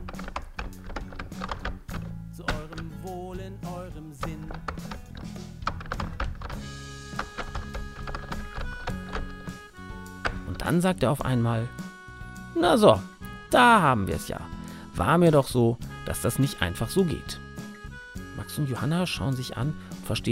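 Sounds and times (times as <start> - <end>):
father typing on a computer keyboard while searching: 0.0 - 3.0, 4.2 - 9.6
soft sustained music: 0.0 - 20.3
speech: 10.7 - 11.8, 12.6 - 17.4, 18.6 - 20.3.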